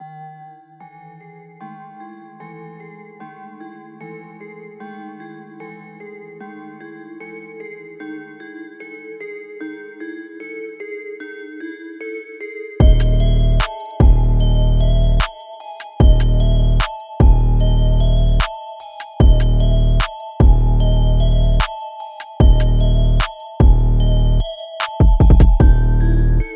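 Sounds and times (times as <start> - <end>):
150 BPM beats: 12.8 - 25.8.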